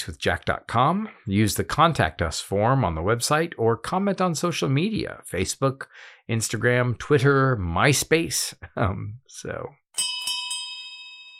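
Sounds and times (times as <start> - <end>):
speech: 0.0 - 10.1
brass pub bell struck for last call: 10.0 - 11.3.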